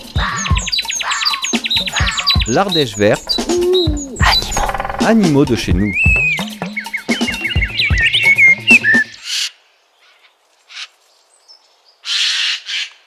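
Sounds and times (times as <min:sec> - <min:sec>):
Eurasian jay warbling, chattering and screeching: 0:00.0 - 0:09.3
speech: 0:02.5 - 0:04.0, 0:05.0 - 0:06.2.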